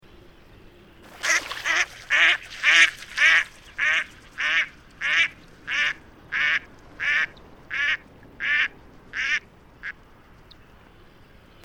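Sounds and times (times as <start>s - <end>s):
mallard duck calls: 1.1s - 10.0s.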